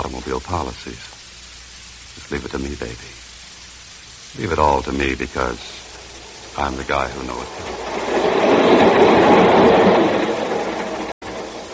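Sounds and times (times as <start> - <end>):
speech: 0.2 - 1.2, 2.2 - 3.2, 4.3 - 5.8, 6.6 - 8.0
train rumbling along railroad tracks: 5.9 - 11.7.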